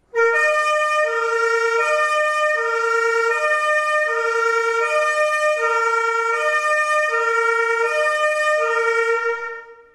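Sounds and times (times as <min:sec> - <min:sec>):
fire engine two-tone siren: 0:00.0 - 0:09.9.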